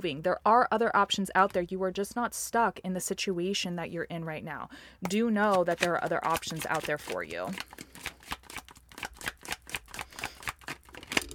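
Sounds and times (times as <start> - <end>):
speech: 0.0 - 7.9
tarot cards being shuffled: 5.4 - 11.3.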